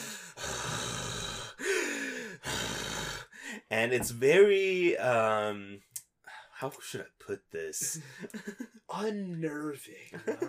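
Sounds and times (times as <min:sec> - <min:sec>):
voice imitating heavy breathing: 0:00.0 - 0:03.7
speech: 0:03.7 - 0:05.9, 0:06.6 - 0:10.4.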